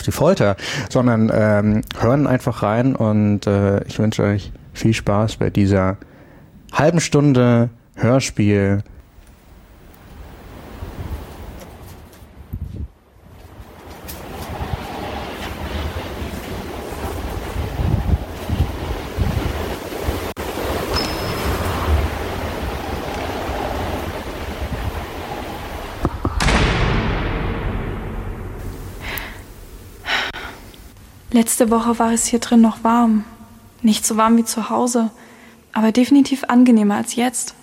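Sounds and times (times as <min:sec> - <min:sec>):
speech: 0:00.0 - 0:06.1, 0:06.7 - 0:08.9, 0:31.5 - 0:37.6
raging snowstorm wind roaring with gusts: 0:09.8 - 0:31.3.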